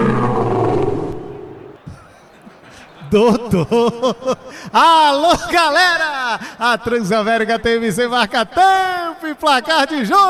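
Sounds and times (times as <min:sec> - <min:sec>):
rough deep lion roar: 0:00.0 - 0:01.8
laughter: 0:01.8 - 0:06.6
speech: 0:03.1 - 0:10.2.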